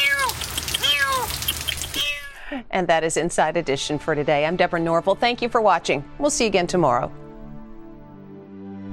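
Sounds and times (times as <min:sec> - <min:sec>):
steady patter of rain: 0:00.0 - 0:02.2
cat meowing under a car hood in rain: 0:00.0 - 0:02.5
speech: 0:02.5 - 0:07.2.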